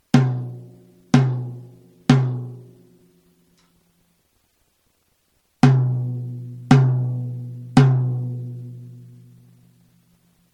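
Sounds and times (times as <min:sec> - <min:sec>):
drum rim hits: 0:00.1 - 0:02.8, 0:05.6 - 0:07.2.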